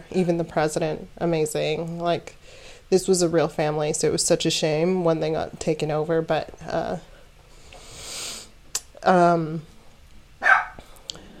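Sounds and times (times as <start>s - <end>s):
speech: 0.1s - 7.1s, 9.0s - 9.7s
dogs barking in a room: 10.4s - 10.8s.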